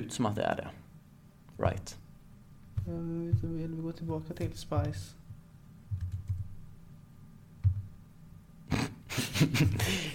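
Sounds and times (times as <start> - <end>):
speech: 0.0 - 0.8, 1.6 - 2.0, 2.8 - 5.2, 9.4 - 10.1
typing on a computer keyboard: 5.9 - 6.6
laughter: 9.1 - 10.1.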